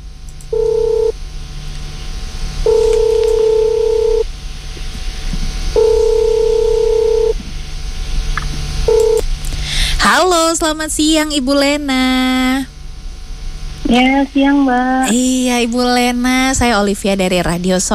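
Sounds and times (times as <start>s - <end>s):
low hum: 0.0s - 17.9s
telephone line tones as a radio host calls a listener: 0.6s - 1.1s, 2.7s - 4.2s, 5.8s - 7.3s, 8.9s - 9.2s
speech: 10.6s - 12.7s, 13.9s - 17.9s.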